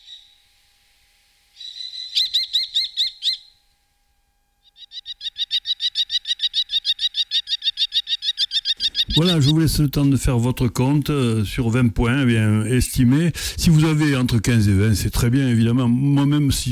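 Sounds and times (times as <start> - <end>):
common kestrel shrill kee-kee-kee calls: 0.0 - 0.4, 1.5 - 3.6, 4.6 - 9.6
speech: 9.2 - 16.7.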